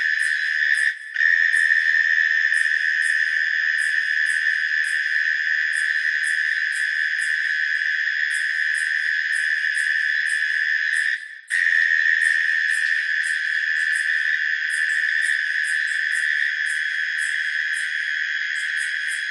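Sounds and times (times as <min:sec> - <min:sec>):
insects trilling at night in autumn in Australia: 0:00.0 - 0:19.2.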